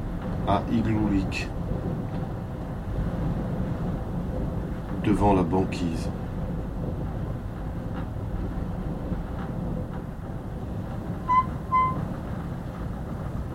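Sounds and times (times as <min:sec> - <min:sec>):
wind roaring: 0:00.0 - 0:13.5
speech: 0:00.5 - 0:01.9, 0:05.0 - 0:06.2
squeaky hinge groans: 0:11.2 - 0:12.1.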